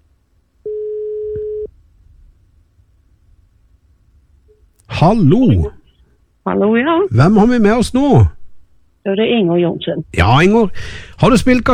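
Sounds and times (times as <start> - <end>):
telephone ringback tone: 0.7 - 1.7
speech: 5.0 - 5.8, 6.4 - 8.4, 9.0 - 11.7.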